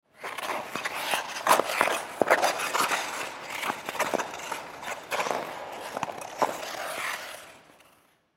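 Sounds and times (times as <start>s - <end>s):
ice skate footwork on an ice rink: 0.1s - 8.3s.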